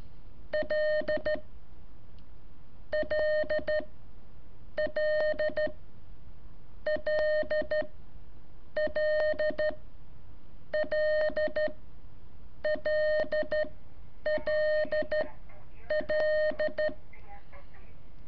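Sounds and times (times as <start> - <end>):
Morse code beeps of keyed tones: 0.6 - 1.4, 3.0 - 3.9, 4.8 - 5.8, 6.9 - 7.9, 8.8 - 9.8, 10.8 - 11.8, 12.6 - 13.7, 14.3 - 15.3, 15.9 - 17.0.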